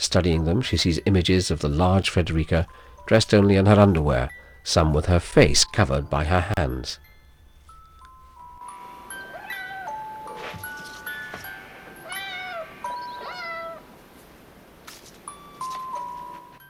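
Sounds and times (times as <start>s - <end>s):
speech: 0.1s - 7.0s
steady chime-like tones: 0.3s - 13.8s, 15.2s - 16.6s
cat meowing: 9.0s - 10.6s, 11.4s - 14.0s.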